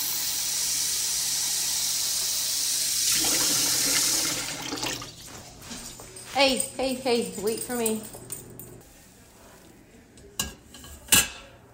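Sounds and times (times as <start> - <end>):
fresh water running from a tap into a dog bowl: 0.2 - 5.3
fresh water filling a dog bowl: 3.0 - 5.3
speech: 6.4 - 8.2.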